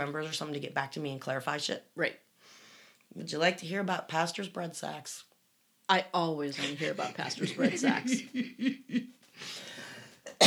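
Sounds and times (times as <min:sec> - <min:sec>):
speech: 0:00.0 - 0:02.3, 0:03.1 - 0:05.3, 0:05.9 - 0:09.7
raspy breathing: 0:02.4 - 0:03.0, 0:09.3 - 0:10.3
laughter: 0:06.6 - 0:09.1
person coughing to clear phlegm from the throat: 0:10.3 - 0:10.4.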